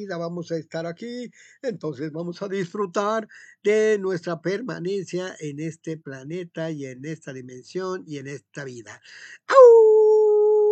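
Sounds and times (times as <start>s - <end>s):
speech: 0.0s - 9.8s
person imitating a wolf howl: 9.5s - 10.7s.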